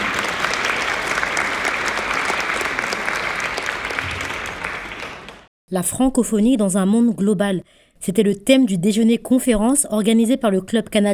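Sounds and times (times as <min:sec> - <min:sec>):
large audience applauding loudly: 0:00.0 - 0:05.5
speech: 0:05.7 - 0:11.1.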